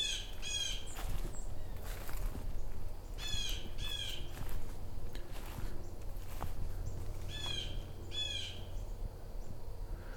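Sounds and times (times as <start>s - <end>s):
harsh squawking blue jay calls: 0.0s - 1.9s, 3.0s - 4.4s, 6.8s - 8.9s
steady low outdoor rumble: 0.0s - 10.1s.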